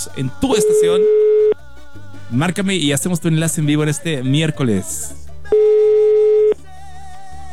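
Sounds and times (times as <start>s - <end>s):
speech: 0.0s - 1.3s, 2.3s - 5.2s
telephone ringing tone on an outgoing call: 0.5s - 1.6s, 5.5s - 6.6s.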